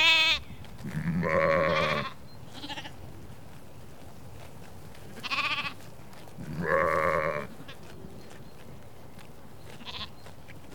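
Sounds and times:
sheep bleating on pasture: 0.0s - 2.9s, 5.2s - 5.8s, 6.4s - 7.5s, 9.8s - 10.2s.

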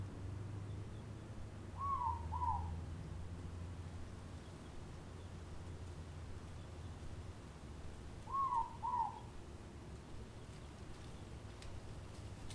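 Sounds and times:
steady low-pitched background noise: 0.0s - 12.5s
morepork double hoot in Auckland, New Zealand: 1.8s - 2.7s, 8.3s - 9.3s.

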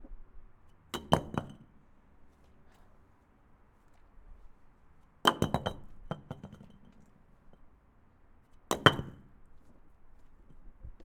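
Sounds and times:
brick hitting wall: 1.0s - 1.7s, 5.2s - 6.7s, 8.7s - 9.4s.

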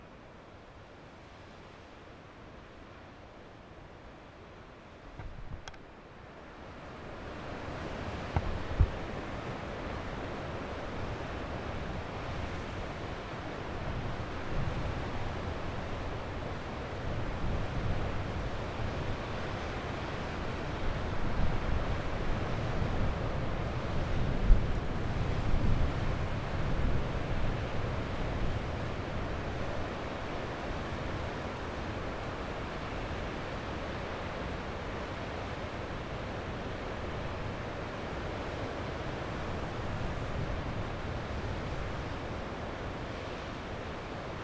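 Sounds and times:
sea waves roaring: 6.8s - 44.4s.

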